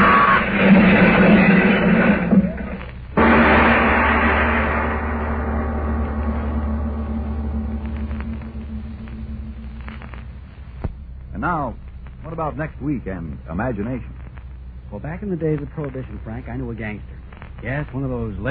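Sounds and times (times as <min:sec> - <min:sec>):
car crashing into a wall: 0:00.0 - 0:08.9
speech: 0:12.4 - 0:14.2, 0:14.9 - 0:18.4.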